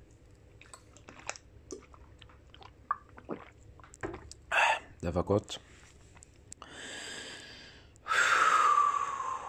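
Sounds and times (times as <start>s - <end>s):
wet clicks and gulps of swallowing water: 0.4s - 4.9s
person drinking water: 0.6s - 5.0s
speech: 5.0s - 5.8s
short breathy exhale or sigh: 6.6s - 9.4s.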